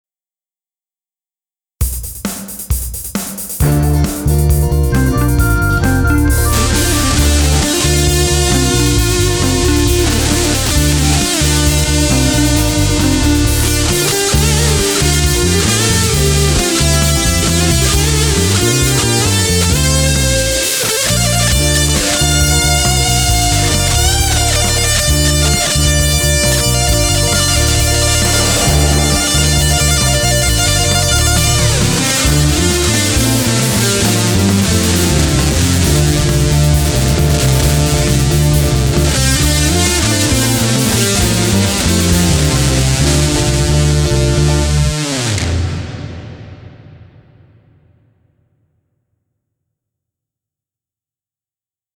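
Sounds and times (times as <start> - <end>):
tube fuzz guitar: 3.4 - 48.0.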